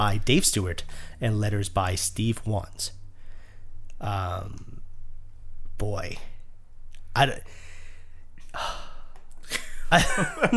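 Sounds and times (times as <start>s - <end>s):
speech: 0.0s - 3.0s, 4.0s - 4.8s, 5.8s - 6.3s, 7.2s - 7.6s, 8.5s - 8.8s, 9.9s - 10.5s
heavy breathing into the microphone: 0.9s - 1.2s, 3.1s - 3.8s, 7.5s - 9.1s.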